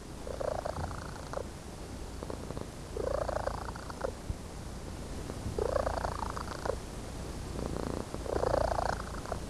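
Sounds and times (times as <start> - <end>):
Felis catus domestic cat purring in a good mood: 0.2 - 1.5, 2.1 - 4.2, 5.2 - 6.8, 7.4 - 9.4.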